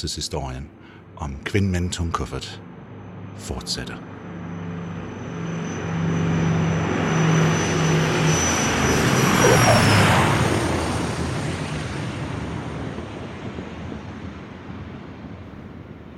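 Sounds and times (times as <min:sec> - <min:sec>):
speech: 0:00.0 - 0:02.7, 0:03.4 - 0:04.2
small passenger plane engine drone while landing: 0:00.6 - 0:16.1
thin high whine of a landing small passenger plane: 0:09.1 - 0:10.4.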